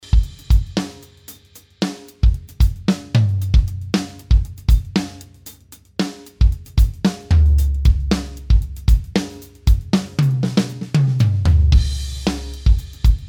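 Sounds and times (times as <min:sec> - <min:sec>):
drums recorded with room microphones: 0:00.0 - 0:13.2.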